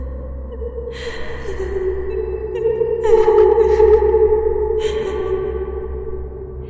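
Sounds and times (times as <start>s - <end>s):
low steady hum: 0.0s - 6.6s
young girl crying with echo in a large empty space: 1.4s - 5.5s.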